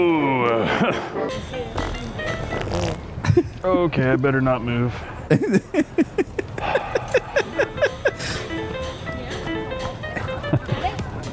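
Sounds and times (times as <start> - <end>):
speech: 0.0 - 1.8, 3.6 - 6.2
laughter: 0.5 - 1.5, 3.2 - 3.9, 5.1 - 8.6, 10.0 - 11.0
fart: 1.8 - 3.0.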